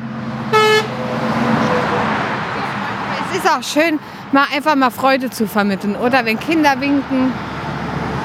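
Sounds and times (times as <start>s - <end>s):
truck horn blast: 0.0s - 3.4s
engine and road noise: 0.0s - 8.2s
speech: 3.4s - 7.5s.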